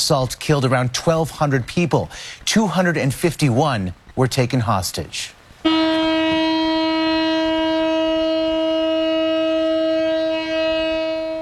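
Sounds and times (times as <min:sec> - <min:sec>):
faint hum: 0:00.0 - 0:11.4
speech: 0:00.1 - 0:05.9
memorial siren wailing: 0:05.7 - 0:11.4.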